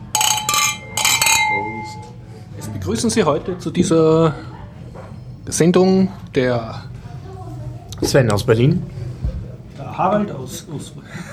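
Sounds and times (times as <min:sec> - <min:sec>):
glasses clinking in a toast: 0:00.0 - 0:02.2
speech: 0:02.8 - 0:04.5, 0:05.5 - 0:06.9, 0:08.0 - 0:09.0, 0:10.0 - 0:11.0.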